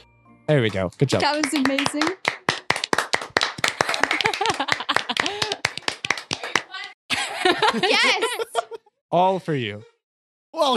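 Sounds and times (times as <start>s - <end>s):
speech: 0.0s - 2.3s, 7.7s - 9.9s, 10.5s - 10.7s
small group clapping hands: 0.6s - 7.0s
laughter: 3.8s - 5.7s, 7.1s - 9.0s.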